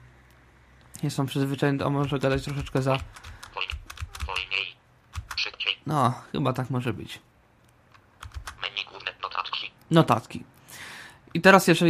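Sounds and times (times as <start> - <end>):
speech: 1.0 - 3.3, 5.9 - 7.3, 9.9 - 10.5, 11.3 - 11.8
computer keyboard keys pressed to navigate a menu: 2.0 - 5.4, 7.6 - 8.7.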